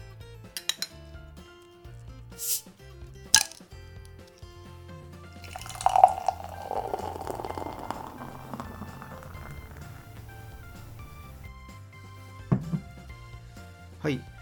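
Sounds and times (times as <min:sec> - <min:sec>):
stout bottle cap popping with a fizzing hiss: 0:03.4 - 0:03.6, 0:05.4 - 0:11.4
glass clinking: 0:05.4 - 0:11.4
stout beer poured into a glass: 0:05.4 - 0:11.5
speech: 0:14.1 - 0:14.3.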